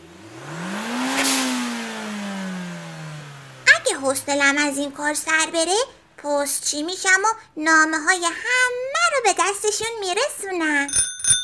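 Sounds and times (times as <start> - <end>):
race car engine revving as it roars past: 0.0 - 5.6
speech: 3.9 - 11.1.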